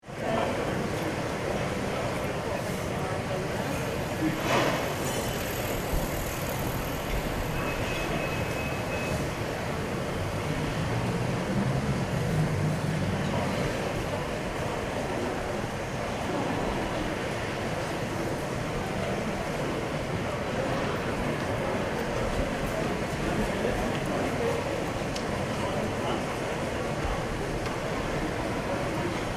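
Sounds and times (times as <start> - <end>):
outdoor cafe and restaurant ambience: 0.0 - 29.3.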